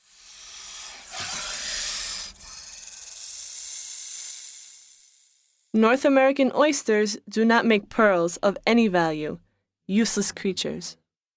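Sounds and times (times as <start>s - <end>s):
gopher snake hissing: 0.0s - 5.8s
speech: 5.8s - 11.0s.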